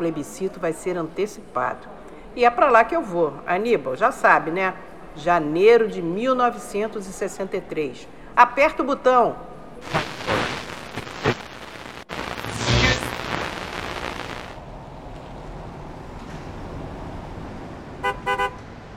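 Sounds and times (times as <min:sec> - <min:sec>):
speech: 0:00.0 - 0:10.1
steady low hum in a parking lot: 0:09.8 - 0:16.7
clunks in a parking lot: 0:15.1 - 0:17.1
car horn toots: 0:18.0 - 0:18.6.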